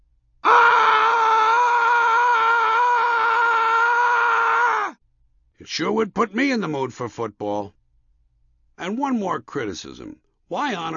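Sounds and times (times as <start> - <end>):
person screaming: 0.4 - 5.0
speech: 5.7 - 7.8, 8.8 - 10.9.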